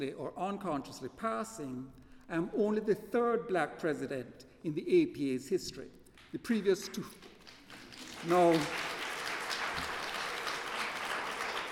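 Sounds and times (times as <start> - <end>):
speech: 0.0 - 7.3, 8.2 - 8.9
audience applause at a meeting of a philosophical association: 7.4 - 11.7.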